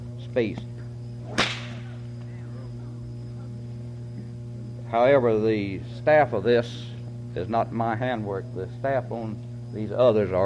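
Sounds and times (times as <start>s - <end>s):
low steady hum: 0.0s - 10.4s
speech: 0.4s - 1.4s, 4.9s - 10.4s
small braided whip cracking: 1.2s - 2.0s.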